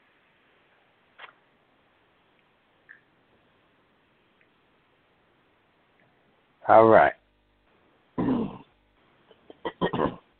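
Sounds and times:
speech: 6.7 - 7.2
person clearing throat: 8.2 - 8.7, 9.4 - 10.3.

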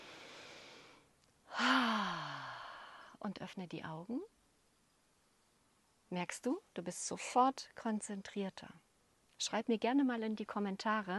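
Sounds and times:
deep breath and sigh during a guided concentration exercise: 0.0 - 3.2
speech: 3.2 - 4.3, 6.1 - 8.8, 9.4 - 11.1.

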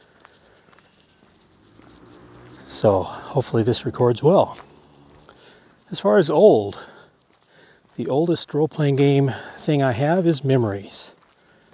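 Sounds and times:
crickets chirring outdoors: 0.0 - 6.2
speech: 2.8 - 4.6, 5.9 - 6.9, 8.0 - 11.0.

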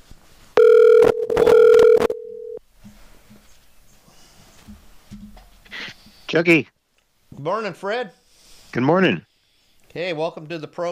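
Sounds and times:
telephone dialing tones: 0.6 - 2.6
speech: 6.3 - 6.8, 7.4 - 9.3, 10.0 - 10.9.

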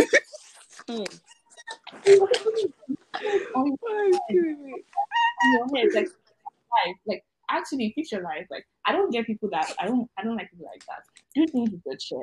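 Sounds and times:
person imitating chicken clucking and squawking: 0.8 - 6.1
speech: 0.9 - 1.3, 2.1 - 2.8, 5.8 - 6.2, 7.7 - 12.2.

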